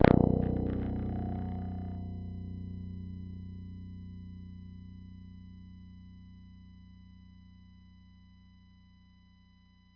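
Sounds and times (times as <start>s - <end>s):
B string plucked: 0.0s - 2.7s.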